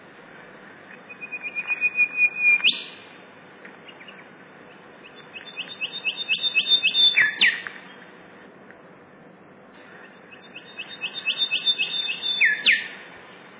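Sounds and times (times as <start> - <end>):
golden whistler singing: 1.1 - 3.0, 5.0 - 7.6, 10.1 - 13.0.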